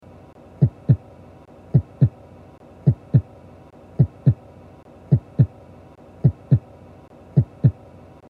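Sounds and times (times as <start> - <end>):
heartbeat imitated with a throat: 0.6 - 1.0, 1.7 - 2.2, 2.8 - 3.3, 4.0 - 4.4, 5.1 - 5.6, 6.2 - 6.7, 7.4 - 7.8.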